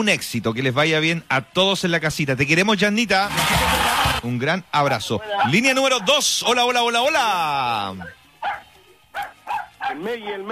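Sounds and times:
speech: 0:00.0 - 0:08.2, 0:09.9 - 0:10.5
dog barking through a phone line: 0:05.3 - 0:06.6, 0:08.0 - 0:10.4.

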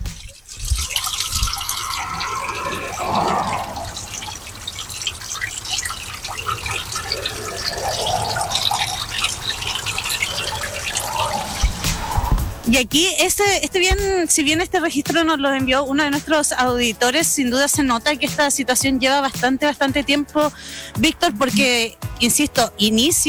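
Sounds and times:
water pouring and splashing onto a hard outdoor surface: 0:00.0 - 0:12.7
speech: 0:12.8 - 0:23.2.

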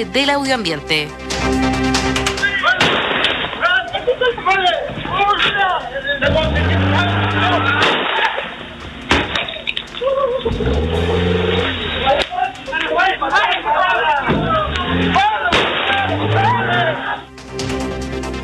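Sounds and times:
speech: 0:00.0 - 0:01.7, 0:05.4 - 0:07.8
several people talking and shouting: 0:02.2 - 0:17.4
gunshots fired from a moving vehicle at people in the street: 0:02.8 - 0:03.5
engine noise: 0:06.2 - 0:07.8, 0:10.5 - 0:12.2.

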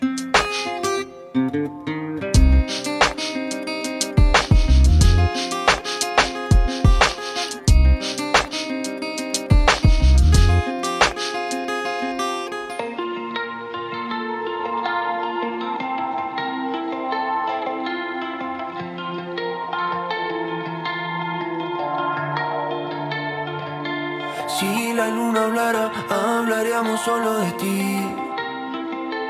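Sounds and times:
sustained music washed in heavy echo and reverb: 0:00.0 - 0:01.3, 0:02.3 - 0:29.2
loud punchy beats: 0:00.1 - 0:00.8, 0:02.4 - 0:11.6
speech: 0:01.4 - 0:02.0.

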